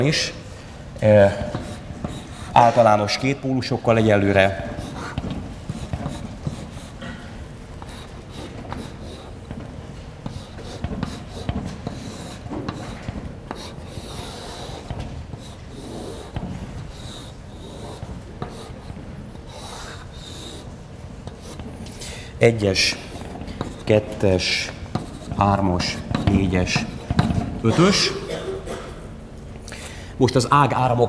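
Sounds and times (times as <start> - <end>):
speech: 0.0 - 0.4, 1.0 - 1.6, 2.6 - 4.7, 22.4 - 23.0, 23.9 - 24.8, 25.4 - 26.9, 27.6 - 28.2, 30.2 - 31.0
pen or chalk scratching on a surface while drawing a circuit diagram: 1.4 - 2.8, 4.6 - 7.0, 7.8 - 9.4, 10.2 - 20.7, 21.3 - 21.8, 22.8 - 27.4.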